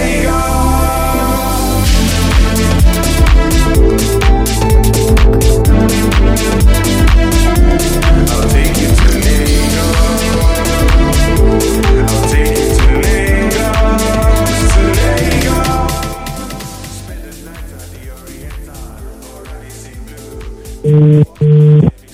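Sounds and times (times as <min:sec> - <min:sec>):
busy music: 0:00.0 - 0:22.1
telephone ringback tone of an outgoing call: 0:20.9 - 0:21.9.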